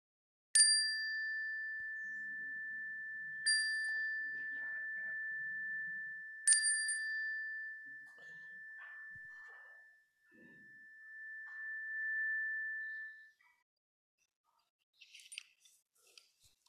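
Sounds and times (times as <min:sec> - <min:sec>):
chime struck during prayer: 0:00.6 - 0:13.4.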